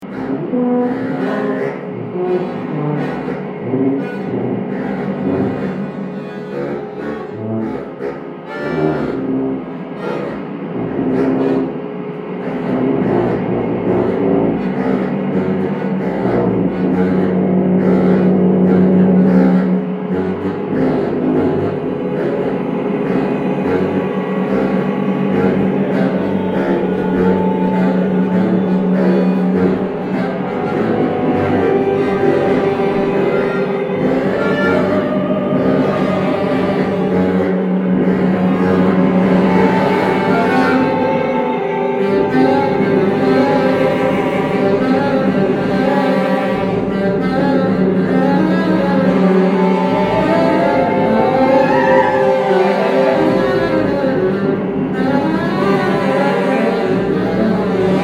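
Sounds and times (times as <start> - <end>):
saxophone playing: 0.0 - 58.0.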